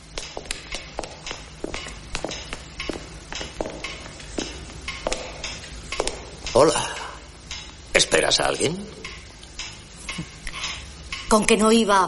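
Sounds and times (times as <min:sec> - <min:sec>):
footsteps of a man and a maid walking into a family house: 0:00.0 - 0:11.3
speech: 0:06.6 - 0:07.0, 0:08.3 - 0:09.0, 0:11.3 - 0:12.0.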